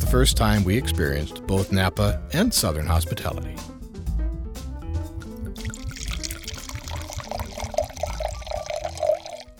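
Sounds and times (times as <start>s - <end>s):
speech: 0.1s - 3.8s
wine pouring into a glass: 5.2s - 9.5s.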